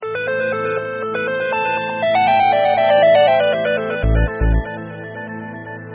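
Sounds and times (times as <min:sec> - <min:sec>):
Motorola phone ringtones: 0:00.2 - 0:04.9.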